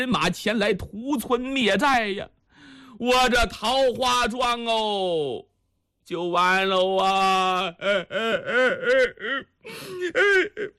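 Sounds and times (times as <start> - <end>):
speech: 0.0 - 2.4, 3.0 - 5.5, 6.1 - 10.7
storyteller imitating a man crying: 7.4 - 10.7.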